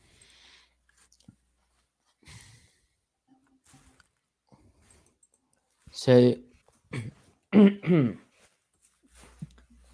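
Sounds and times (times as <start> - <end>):
speech: 6.0 - 6.4
throat clearing: 6.9 - 8.3.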